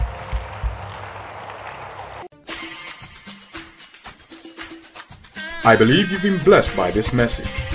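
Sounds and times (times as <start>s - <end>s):
crowd clapping hands in praise: 0.0s - 2.3s
rhythmic hand claps: 0.0s - 2.3s, 3.6s - 5.3s
speech: 5.6s - 7.7s.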